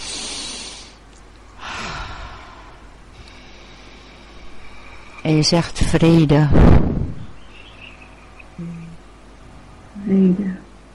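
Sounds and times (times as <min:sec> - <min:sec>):
deep breaths during a guided relaxation exercise: 0:00.0 - 0:01.0, 0:01.6 - 0:05.2
speech: 0:05.2 - 0:06.8.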